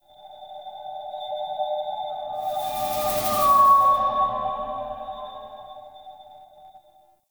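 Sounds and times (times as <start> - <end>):
psychedelic moan texture ambience in a root cave: 2.4 - 6.0.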